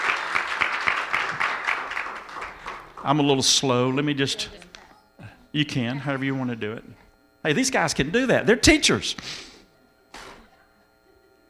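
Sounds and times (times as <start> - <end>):
church congregation applause: 0.0 - 3.6
speech: 3.0 - 4.6, 5.5 - 9.5.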